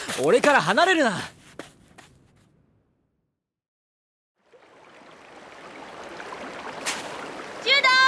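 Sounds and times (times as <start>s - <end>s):
speech: 0.2s - 1.4s
flowing river water: 4.4s - 8.0s.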